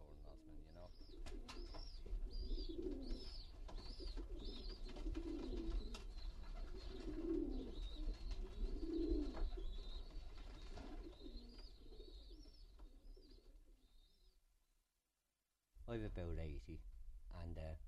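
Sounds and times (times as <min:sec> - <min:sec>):
pigeons cooing in a pigeon shed: 0:00.1 - 0:13.8
speech: 0:16.0 - 0:16.9, 0:17.5 - 0:17.8.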